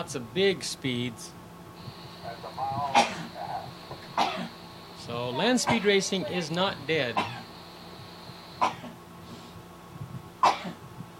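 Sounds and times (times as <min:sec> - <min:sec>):
speech: 0:00.0 - 0:04.5, 0:05.1 - 0:07.4
person sneezing: 0:02.8 - 0:03.5, 0:04.1 - 0:04.6, 0:07.1 - 0:07.4.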